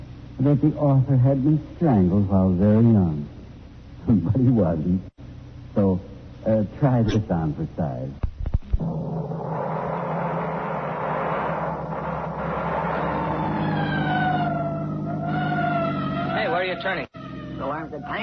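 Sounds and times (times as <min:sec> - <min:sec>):
speech: 0:00.4 - 0:03.3, 0:04.0 - 0:05.2, 0:05.8 - 0:08.2
emergency vehicle siren wailing: 0:08.8 - 0:18.2.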